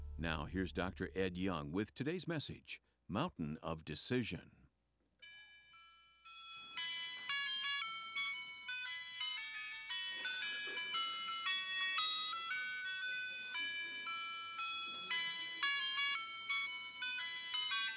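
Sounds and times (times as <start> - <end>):
speech: 0.2 - 4.6
ice cream truck jingle: 5.2 - 17.9.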